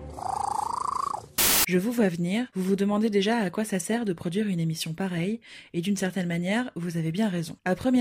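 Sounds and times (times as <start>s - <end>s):
cat purring: 0.1s - 1.4s
speech: 1.7s - 7.9s.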